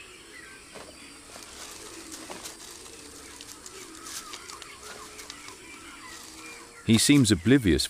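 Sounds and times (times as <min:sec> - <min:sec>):
young caracara clucking calls while grooming a capybara: 0:00.0 - 0:07.5
speech: 0:06.9 - 0:07.8.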